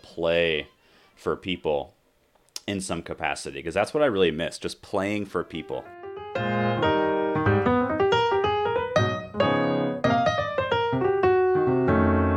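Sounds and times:
speech: 0.2s - 2.0s, 2.6s - 6.5s
electric keyboard playing jazz in a livestreamed performance: 5.8s - 12.3s.

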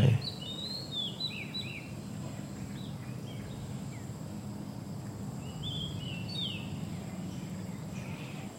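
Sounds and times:
birds chirping and trilling outdoors: 0.0s - 8.5s
steady low outdoor rumble: 0.0s - 8.5s.

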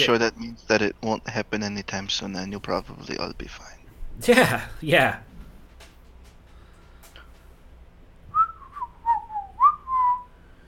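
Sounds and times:
speech: 0.0s - 5.3s
faint low hum: 0.0s - 10.6s
person whistling a short clear melody: 8.3s - 10.3s.

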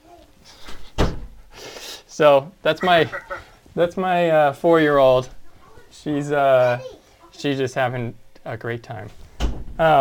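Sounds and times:
door swinging shut with a solid thud: 1.0s - 1.3s, 9.4s - 9.8s
speech: 2.2s - 5.4s, 6.0s - 9.2s, 9.8s - 9.9s.

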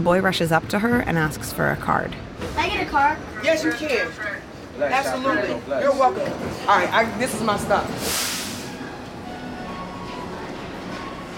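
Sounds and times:
speech: 0.0s - 8.2s
train rumbling as it pulls into a station platform: 0.0s - 11.3s
train hiss: 7.9s - 8.9s.

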